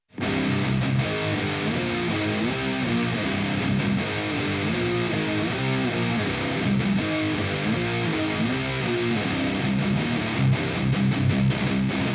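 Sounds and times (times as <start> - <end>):
old school high gain distorted guitar: 0.0 - 12.1.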